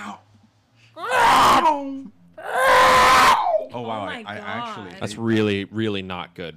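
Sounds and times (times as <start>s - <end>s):
voice mimicking a TIE fighter's scream: 1.0s - 3.8s
speech: 3.8s - 6.5s.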